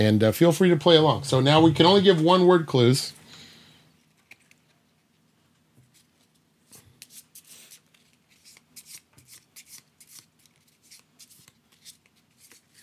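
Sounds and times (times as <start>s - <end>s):
speech: 0.0s - 3.2s
deck of playing cards being shuffled: 5.9s - 12.8s.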